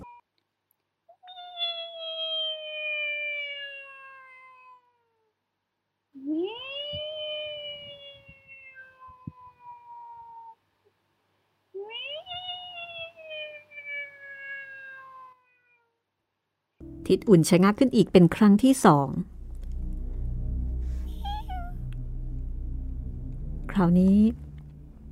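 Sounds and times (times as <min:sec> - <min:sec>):
cat meowing: 0:01.1 - 0:05.3, 0:06.2 - 0:10.6, 0:11.8 - 0:16.0, 0:21.1 - 0:21.7
speech: 0:17.1 - 0:19.3, 0:23.8 - 0:24.4
warbling swooping noise settling into a low rumble: 0:19.0 - 0:25.0.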